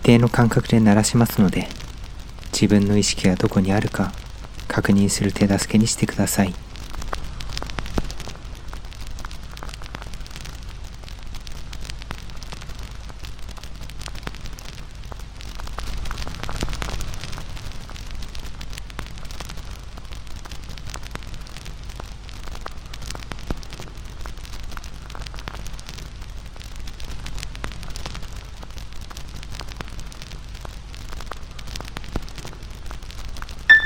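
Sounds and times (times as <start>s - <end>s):
firewood crackling and popping in a fire: 0.0s - 33.8s
speech: 0.1s - 1.8s, 2.5s - 6.6s.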